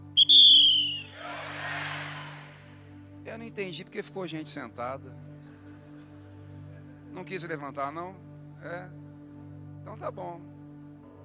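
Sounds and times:
loud shrill whistle blast: 0:00.1 - 0:01.2
speech: 0:03.4 - 0:05.3, 0:07.2 - 0:09.0, 0:09.8 - 0:10.5.

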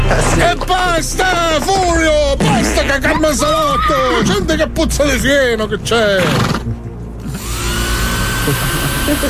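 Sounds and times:
speech: 0:00.2 - 0:06.8, 0:08.5 - 0:09.2
hair dryer blowing: 0:07.2 - 0:09.2.

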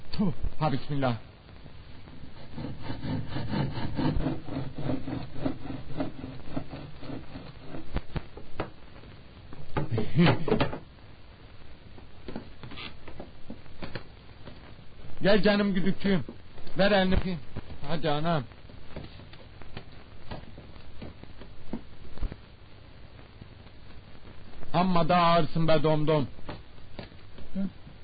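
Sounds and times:
speech: 0:00.2 - 0:01.3, 0:02.6 - 0:06.0, 0:10.2 - 0:10.6, 0:15.2 - 0:18.6, 0:24.8 - 0:26.4, 0:27.6 - 0:27.8
hand saw cutting through wood: 0:02.3 - 0:08.0
knocks: 0:09.6 - 0:10.9.

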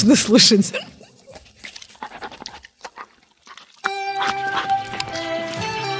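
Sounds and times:
speech: 0:00.0 - 0:01.0
dog licking a person with wet smacking and slurping: 0:00.8 - 0:05.8
music: 0:03.8 - 0:05.9.

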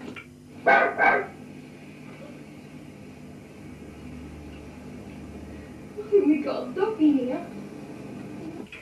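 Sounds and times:
steady low hum: 0:00.0 - 0:08.8
dog barking: 0:00.6 - 0:01.4.

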